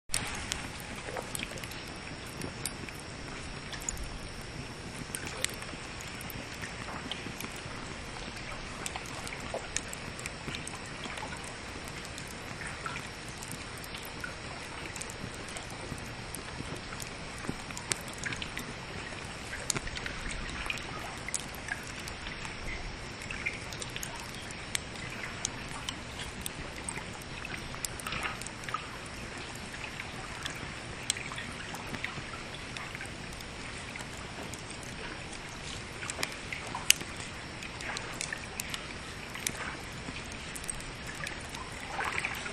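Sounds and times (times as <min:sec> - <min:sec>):
lake water: 0:00.1 - 0:42.5.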